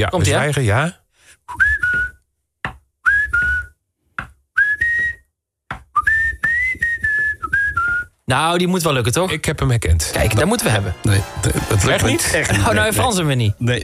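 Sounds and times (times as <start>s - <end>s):
speech: 0.0s - 1.6s, 8.3s - 13.8s
person whistling a tune: 1.5s - 2.2s, 3.0s - 3.8s, 4.5s - 5.3s, 5.9s - 8.1s
laughter: 10.1s - 13.4s.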